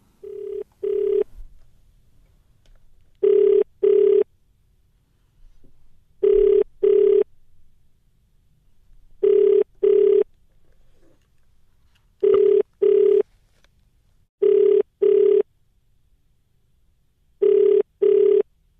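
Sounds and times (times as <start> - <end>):
phone-line ringback tone on an unanswered outgoing call: 0.2 - 1.3, 3.2 - 4.3, 6.2 - 7.3, 9.2 - 10.3, 12.2 - 13.2, 14.4 - 15.4, 17.4 - 18.4.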